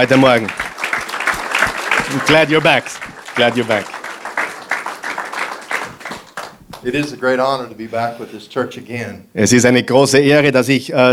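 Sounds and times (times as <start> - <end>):
speech: 0.0 - 0.6, 2.1 - 4.0, 6.8 - 11.1
large crowd applauding: 0.0 - 8.8.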